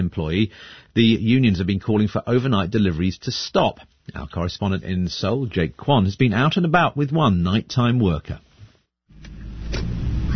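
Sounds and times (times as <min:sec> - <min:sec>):
speech: 0:00.0 - 0:08.5, 0:09.8 - 0:10.3
delivery truck engine and road rumble inside cab in narrow city alleys at night: 0:08.5 - 0:10.3.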